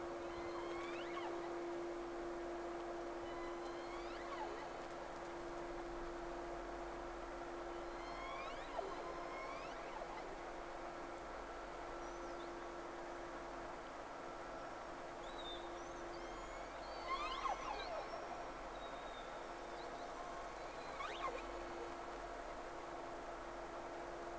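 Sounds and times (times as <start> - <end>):
low hum: 0.0 - 24.3
whale whistles recorded by hydrophone: 0.2 - 1.6, 3.3 - 4.8, 7.7 - 10.4, 15.2 - 21.9.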